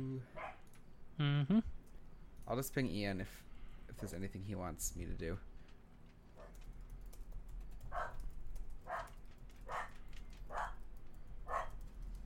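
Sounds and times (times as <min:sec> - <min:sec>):
low hum: 0:00.0 - 0:12.2
dog barking: 0:00.4 - 0:00.6, 0:07.9 - 0:08.2, 0:08.8 - 0:10.8, 0:11.5 - 0:11.8
speech: 0:01.2 - 0:01.8, 0:02.5 - 0:05.5.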